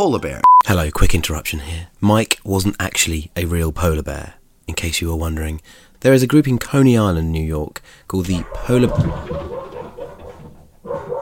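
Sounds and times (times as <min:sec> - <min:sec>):
speech: 0:00.0 - 0:09.7
dog barking: 0:08.4 - 0:11.1.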